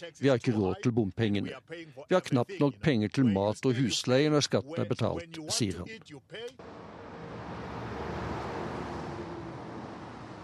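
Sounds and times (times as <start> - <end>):
speech: 0.0 - 7.1
cars whizzing past on a road: 6.6 - 10.4.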